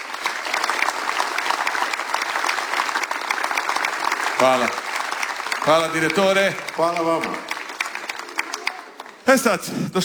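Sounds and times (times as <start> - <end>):
audience applause at a chanson festival: 0.0 - 9.7
speech: 4.4 - 4.8, 5.6 - 7.5, 9.3 - 10.0.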